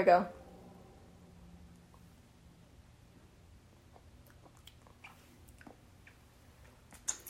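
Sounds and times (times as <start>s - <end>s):
speech: 0.0s - 0.4s
low hum: 0.0s - 7.2s
chewing a ball of candy sushi: 3.8s - 7.2s.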